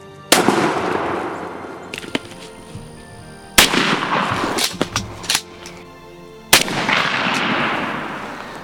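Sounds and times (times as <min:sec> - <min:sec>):
loud gunshots from turkey hunting: 0:00.3 - 0:01.8, 0:03.6 - 0:05.5, 0:06.5 - 0:08.1.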